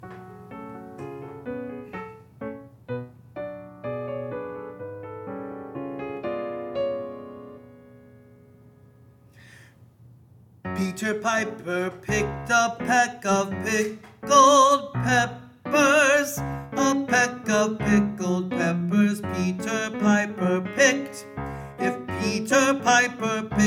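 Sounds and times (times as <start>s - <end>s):
tenor voice singing a part of a mixed three-part choral piece: 10.8s - 23.6s.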